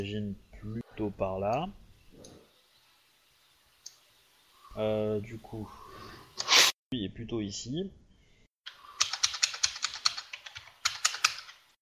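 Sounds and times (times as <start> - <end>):
speech: 0.0 - 1.8, 4.8 - 5.8, 6.4 - 8.0
rapid forceful keystrokes on a computer keyboard: 8.7 - 11.7.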